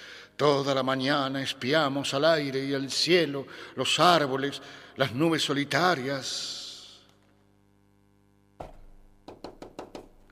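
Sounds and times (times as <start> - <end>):
speech: 0.4 - 6.6
heavy thud: 8.6 - 9.2
firm knocks on a wooden door: 8.6 - 10.3.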